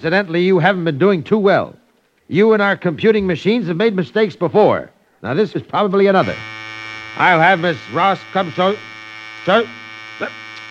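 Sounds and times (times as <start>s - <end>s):
speech: 0.0s - 6.5s, 7.2s - 10.4s
intercom buzzer buzzing: 6.1s - 10.7s.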